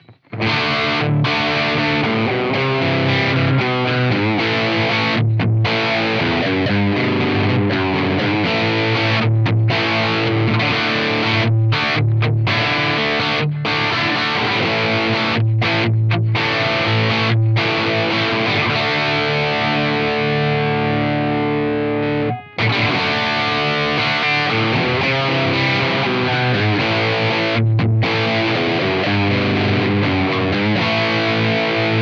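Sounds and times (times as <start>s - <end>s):
guitar through a crunch amplifier: 0.0s - 32.0s.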